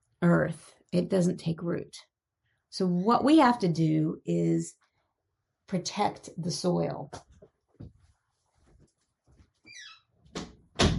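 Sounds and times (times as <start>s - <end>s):
speech: 0.2s - 2.1s, 2.7s - 4.8s, 5.7s - 7.9s
faint shuffling: 7.3s - 9.7s
door knocking as it closes and latches: 9.7s - 10.9s.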